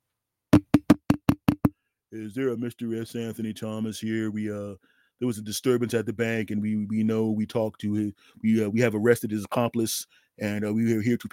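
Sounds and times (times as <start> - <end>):
firm knocking on a door: 0.6 - 1.7
speech: 2.1 - 11.3.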